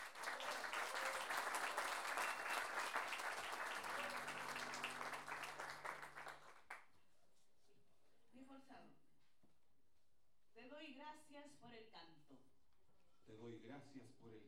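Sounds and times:
audience applause at an improvised folk singing tournament: 0.0 - 6.8.

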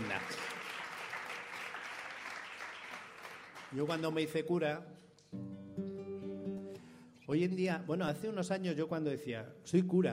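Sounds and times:
audience applause at a Friday religious vigil: 0.0 - 4.2
speech: 3.7 - 5.4, 7.3 - 10.1.

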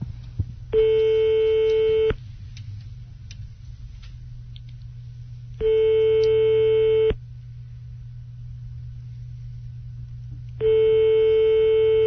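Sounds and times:
constant low hum: 0.0 - 12.0
telephone line tones as a call is dialed: 0.8 - 2.2, 5.6 - 7.2, 10.6 - 12.0.

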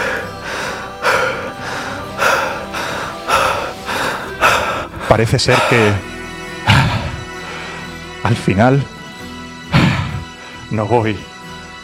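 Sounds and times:
person gasping for air while smothered by a pillow: 0.0 - 6.0, 6.6 - 7.9, 9.7 - 10.3
speech: 5.1 - 6.1, 8.3 - 8.9, 10.7 - 11.3.

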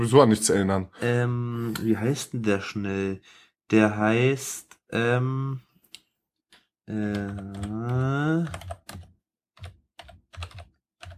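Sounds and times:
speech: 0.0 - 5.7, 6.9 - 8.8
typing on a computer keyboard: 6.9 - 11.1.

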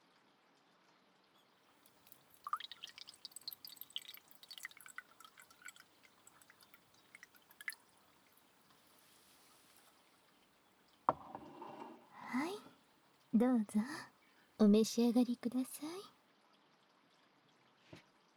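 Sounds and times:
blended tea pouring into a cup: 2.1 - 7.9
speech: 13.4 - 15.9.

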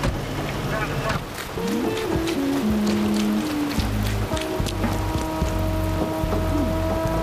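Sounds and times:
rain falling after a spell of hot weather: 0.0 - 7.2
low droning tones: 1.6 - 7.2.

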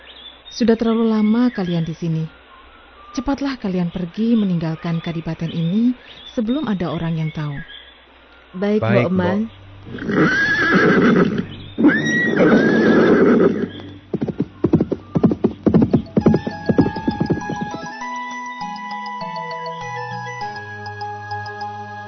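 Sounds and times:
speech: 0.5 - 2.4, 3.1 - 7.8, 8.5 - 12.7
soft steady musical tones stepping between pitches: 8.8 - 22.0
horse neighing: 9.9 - 15.5
horse hooves clip-clopping as the horse is ridden away: 11.8 - 18.0.

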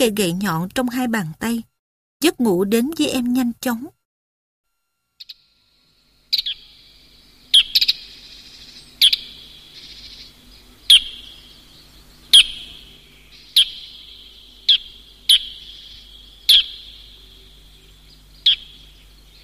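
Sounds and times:
speech: 0.0 - 4.0
starling singing a low sad repeating song: 6.3 - 19.4.

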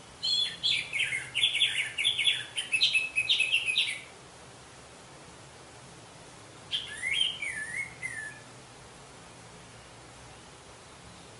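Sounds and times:
steady faint background hiss: 0.0 - 11.3
orange-headed thrush song phrase with wavering slurred whistle: 0.2 - 4.1, 6.7 - 8.5.

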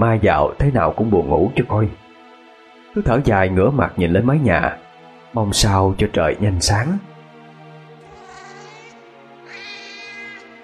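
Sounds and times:
speech: 0.0 - 2.0, 2.9 - 7.1
cat's drawn-out wailing meow at night like a crying baby: 8.0 - 10.6.

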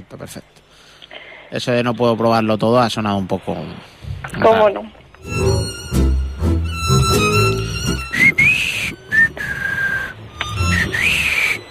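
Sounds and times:
speech: 0.1 - 5.8
dense tonal backdrop: 1.5 - 11.6
person whistling a tune with a dry mouth: 6.8 - 11.6.

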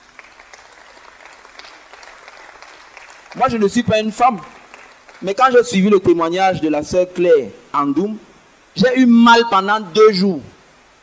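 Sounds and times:
church congregation clapping: 0.0 - 5.7
speech: 3.3 - 4.6, 5.2 - 10.5.

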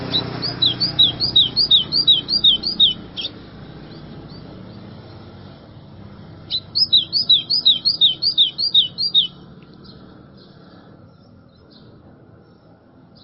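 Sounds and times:
white-throated seedeater sharp downslurred whistles: 0.0 - 4.0, 6.5 - 9.4.

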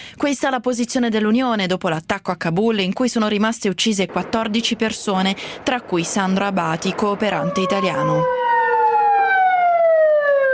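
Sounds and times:
speech: 0.2 - 8.4
ambulance siren wailing at night after an attack: 7.2 - 10.5.

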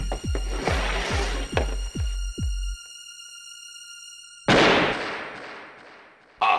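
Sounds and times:
rhythmic thumps: 0.0 - 6.2
pistol gunshot in Russian roulette: 4.5 - 6.2.

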